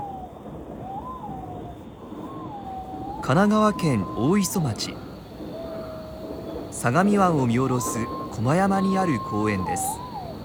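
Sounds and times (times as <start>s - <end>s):
steady hush: 0.0s - 10.4s
white-bellied green pigeon calling from trees in a hilltop park in Kanagawa, Japan: 2.3s - 5.0s, 5.6s - 10.4s
speech: 3.2s - 5.1s, 6.8s - 10.0s.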